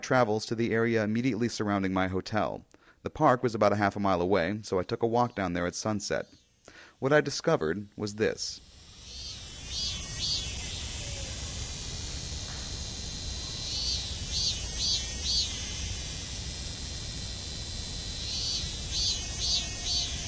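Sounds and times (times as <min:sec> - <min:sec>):
speech: 0:00.0 - 0:08.7
constant noisy outdoor hiss: 0:04.4 - 0:20.2
shrill buzzing cicada-like insects calling at sunset in a park: 0:04.4 - 0:20.2.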